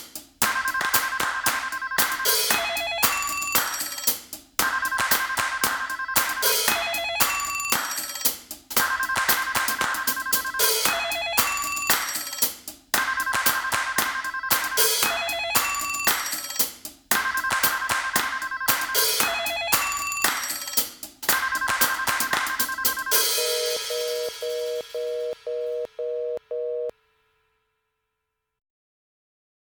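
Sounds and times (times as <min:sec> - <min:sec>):
phone ringing: 0:00.5 - 0:03.6, 0:04.7 - 0:07.7, 0:08.8 - 0:11.8, 0:13.1 - 0:16.1, 0:17.2 - 0:20.2, 0:21.4 - 0:26.9.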